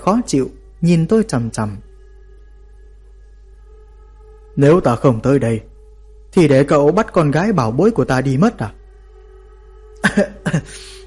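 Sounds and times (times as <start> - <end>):
speech: 0.0 - 1.9, 4.6 - 5.7, 6.3 - 8.8, 10.0 - 11.0
person giving a dry cough: 10.0 - 11.0.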